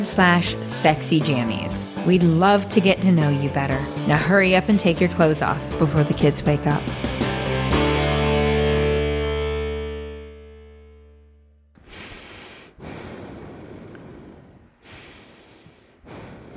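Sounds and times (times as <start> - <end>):
speech: 0.0 - 7.2
heavy breathing into a microphone: 1.8 - 2.1, 11.8 - 16.5
long musical chord: 6.8 - 11.0.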